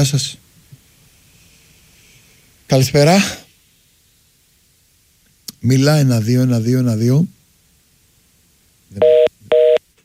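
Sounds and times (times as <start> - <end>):
speech: 0.0 - 0.5, 2.7 - 3.4, 5.6 - 7.4, 8.9 - 9.3
electronic telephone tones after dropped call: 9.0 - 9.8.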